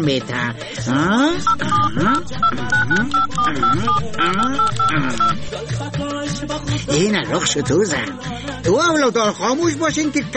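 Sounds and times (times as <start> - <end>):
speech: 0.0 - 10.3
telephone keypad dialing beeps: 1.3 - 5.4.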